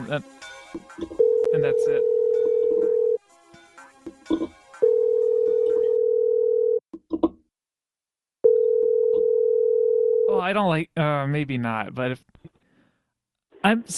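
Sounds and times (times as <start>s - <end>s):
speech: 0.1s - 2.2s, 10.4s - 12.4s, 13.6s - 13.9s
telephone dial tone after the redial button is pressed: 1.2s - 3.2s, 4.8s - 6.8s, 8.4s - 10.3s.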